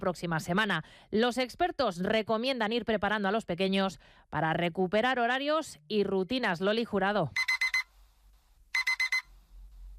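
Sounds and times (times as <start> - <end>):
speech: 0.0 - 7.5
alarm clock ringing with loud electronic beeping: 7.4 - 7.9, 8.8 - 9.3.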